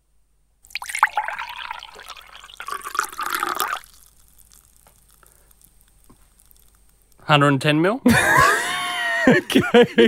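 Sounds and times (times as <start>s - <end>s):
liquid pouring into a container: 0.6s - 7.1s
speech: 7.3s - 8.3s, 9.3s - 10.0s
laughter: 8.1s - 10.0s.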